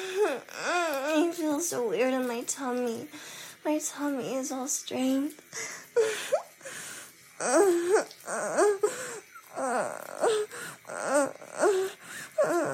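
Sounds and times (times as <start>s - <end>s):
person whimpering and whining like a puppy: 0.0s - 1.1s, 7.4s - 12.7s
speech: 0.3s - 6.4s, 7.4s - 12.7s.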